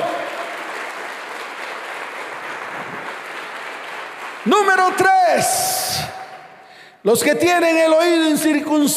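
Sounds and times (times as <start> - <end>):
audience applauding: 0.0 - 6.4
speech: 4.4 - 6.2, 7.0 - 8.9.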